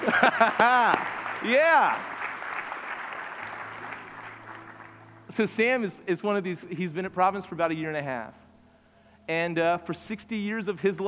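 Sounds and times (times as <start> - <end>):
speech: 0.0 - 2.1, 5.3 - 8.4, 9.3 - 11.0
laughter: 0.0 - 5.0
large congregation applauding: 0.0 - 5.9.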